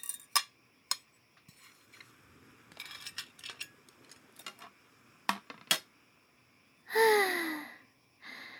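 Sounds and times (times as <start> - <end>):
plates and cutlery clinking as plates are collected after a meal: 0.0 - 2.1, 2.7 - 4.7
breathy sigh: 6.9 - 8.5.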